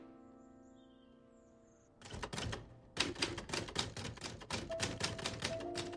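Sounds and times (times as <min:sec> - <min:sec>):
typewriter clacking: 0:02.0 - 0:05.9.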